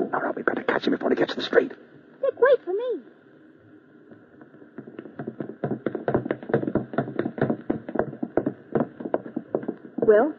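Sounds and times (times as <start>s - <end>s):
speech: 0.3s - 1.8s, 10.1s - 10.3s
hurried footsteps going down a flight of stairs: 4.2s - 10.2s.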